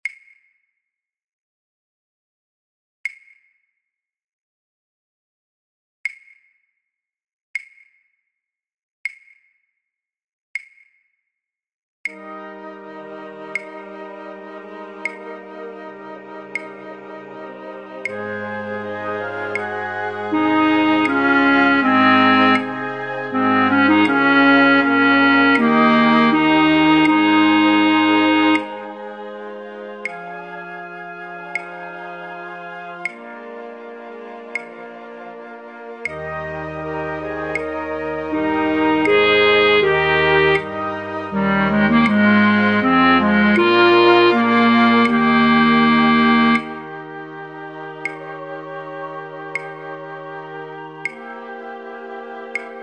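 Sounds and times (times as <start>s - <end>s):
alto flute playing a flute orchestra part for practice tracks: 12.2s - 52.8s.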